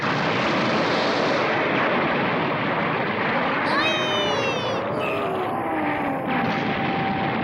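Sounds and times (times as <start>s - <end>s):
huge energy blast exploding: 0.0s - 7.4s.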